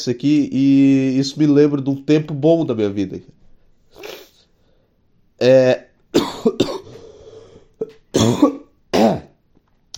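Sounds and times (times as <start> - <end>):
speech: 0.0 - 3.4, 5.4 - 5.8, 8.2 - 8.6
person coughing in wet bursts thick with phlegm: 6.1 - 7.0, 7.8 - 9.4
rattling throat-clearing: 7.8 - 9.4.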